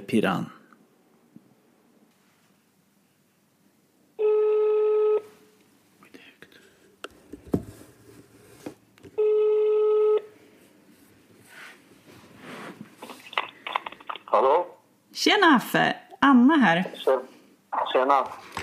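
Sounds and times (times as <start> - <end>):
speech: 0.1 - 0.6, 15.2 - 17.2, 18.0 - 18.5
ringback tones on a phone line as a call is placed: 4.2 - 5.3, 9.2 - 10.3.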